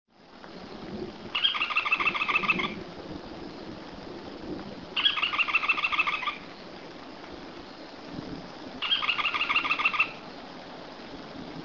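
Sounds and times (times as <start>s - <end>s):
Automolus leucophthalmus white-eyed foliage-gleaner: 1.3s - 2.8s, 5.0s - 6.6s, 8.8s - 10.4s.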